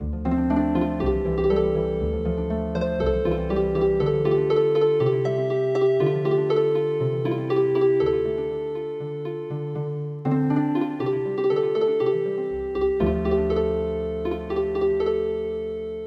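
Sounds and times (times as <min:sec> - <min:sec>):
healing harp music: 0:00.0 - 0:16.0.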